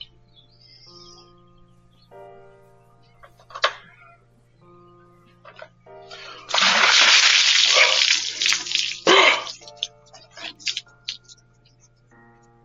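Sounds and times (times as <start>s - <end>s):
water gushing into a bucket: 6.1s - 10.8s
clinks and splashes: 6.1s - 11.2s.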